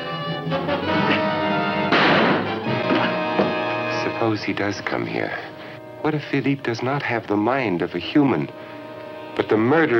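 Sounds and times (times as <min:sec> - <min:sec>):
dense dramatic music bed: 0:00.0 - 0:09.9
speech: 0:00.5 - 0:01.0, 0:04.2 - 0:08.7, 0:09.4 - 0:09.9
loud smashing crash sound effect with rumbling clattering tail: 0:01.9 - 0:03.2
dull impacts: 0:01.9 - 0:03.8.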